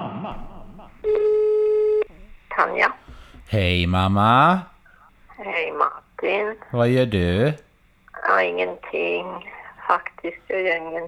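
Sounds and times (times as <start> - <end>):
telephone ringback tone: 0.4 - 4.7
speech: 2.6 - 4.7, 5.5 - 7.6, 8.4 - 11.0.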